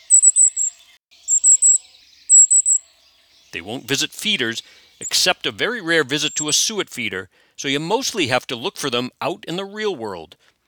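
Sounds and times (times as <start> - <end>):
golden-crowned kinglet calls moving through trees: 0.0 - 3.8, 6.2 - 6.5
speech: 3.5 - 10.5.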